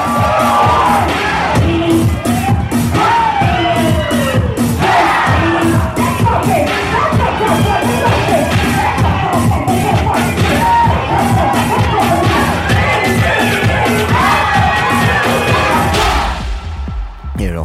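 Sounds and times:
packed ballroom hall crowd shouting and cheering: 0:00.0 - 0:17.4
steady rhythmic music beat: 0:00.0 - 0:17.6.

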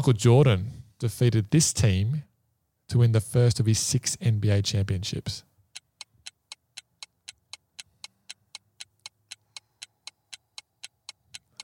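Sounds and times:
speech: 0:00.0 - 0:02.3, 0:02.9 - 0:05.5
quiz countdown clock ticking: 0:05.7 - 0:11.6.

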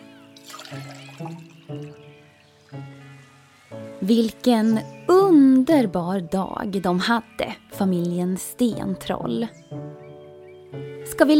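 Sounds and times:
juice pouring into cups: 0:00.4 - 0:02.1
speech: 0:00.7 - 0:01.9, 0:04.0 - 0:09.6, 0:11.2 - 0:11.3.

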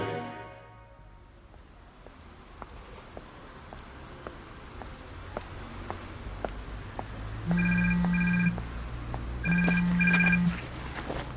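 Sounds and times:
telephone ringing with electronic ringtone: 0:07.5 - 0:08.6, 0:09.4 - 0:10.6.

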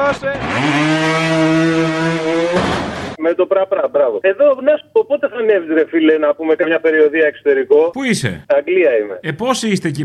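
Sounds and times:
small motorbike engine revving: 0:00.0 - 0:03.2
speech: 0:00.1 - 0:01.0, 0:03.3 - 0:10.0.

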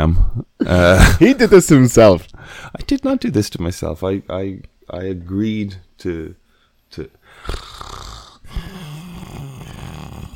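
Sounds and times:
speech: 0:00.0 - 0:07.8
person making exaggerated ASMR-style snore sounds: 0:07.4 - 0:10.3.

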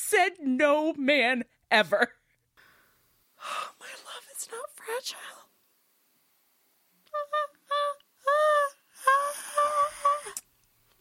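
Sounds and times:
speech: 0:00.2 - 0:02.2, 0:04.5 - 0:05.4
person breathing between sobs: 0:02.6 - 0:03.8
person crying in high quavering wailing sobs: 0:07.2 - 0:10.4.

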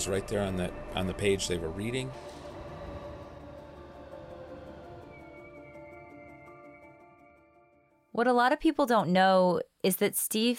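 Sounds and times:
speech: 0:00.0 - 0:02.4, 0:08.2 - 0:10.5
New York City subway train rumbling on rails: 0:00.0 - 0:05.5
metallic whines of subway train: 0:00.0 - 0:07.4.

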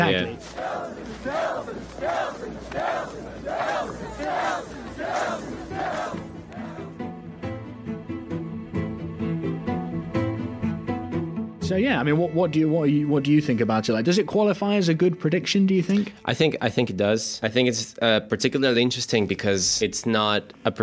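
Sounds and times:
large crowd chanting a name in unison: 0:00.0 - 0:07.2
music playing: 0:00.0 - 0:16.8
speech: 0:00.1 - 0:05.1, 0:11.7 - 0:20.8.

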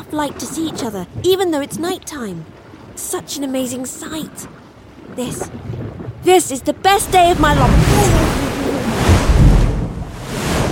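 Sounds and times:
speech: 0:00.0 - 0:08.4
loud ocean wave crashing: 0:07.0 - 0:10.7.

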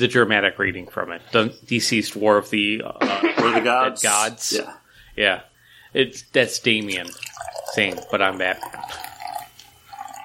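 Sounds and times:
speech: 0:00.0 - 0:09.1
Guinness beer pouring into a glass: 0:06.6 - 0:10.2.

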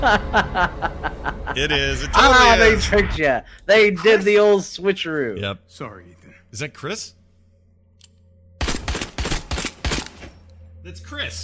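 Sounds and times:
speech: 0:00.0 - 0:01.0, 0:01.6 - 0:07.2, 0:10.8 - 0:11.4
laughter: 0:00.0 - 0:03.1
low hum: 0:00.0 - 0:04.1, 0:04.8 - 0:11.4
gunfire in a video game trailer: 0:08.6 - 0:10.3.

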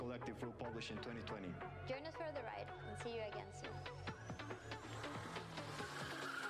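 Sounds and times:
speech: 0:00.2 - 0:05.4
small race car engines buzzing in a motorsport video game: 0:04.2 - 0:06.4
tire squeal as race cars drift: 0:04.5 - 0:06.4.

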